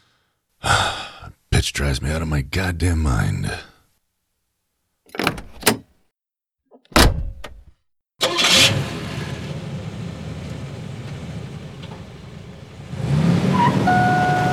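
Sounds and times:
speech: 0:01.6 - 0:03.7
car doors thumping: 0:05.1 - 0:05.8, 0:06.9 - 0:07.7
car engine running while driving: 0:08.3 - 0:14.5.

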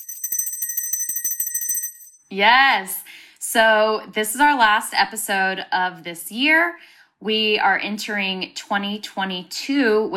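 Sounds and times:
bell ringing rapidly: 0:00.0 - 0:02.2
speech: 0:02.3 - 0:10.1.

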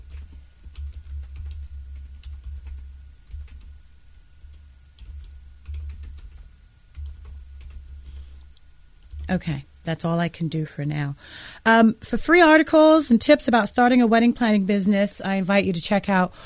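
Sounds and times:
steady low hum: 0:00.0 - 0:11.3
typing on a computer keyboard: 0:00.1 - 0:03.7, 0:05.0 - 0:07.9
speech: 0:09.3 - 0:16.4.

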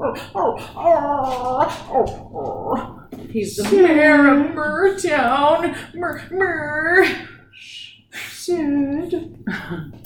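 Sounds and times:
dog whining: 0:00.0 - 0:03.0
speech: 0:00.2 - 0:09.9.

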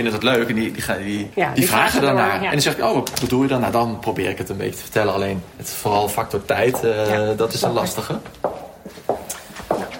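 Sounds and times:
speech: 0:00.0 - 0:08.6
heel strike footsteps of people walking along a corridor: 0:06.5 - 0:09.9.

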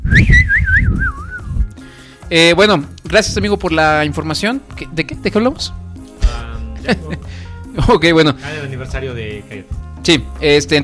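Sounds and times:
bird-like whistle warbling and trilling: 0:00.0 - 0:01.5
speech: 0:02.3 - 0:05.8, 0:06.8 - 0:10.8
laughter: 0:06.2 - 0:07.4.

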